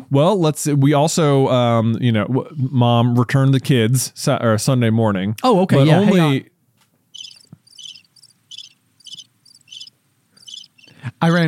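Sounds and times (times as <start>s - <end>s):
speech: 0.1s - 6.5s, 11.2s - 11.4s
crickets chirping in pulsed bursts: 7.1s - 10.9s.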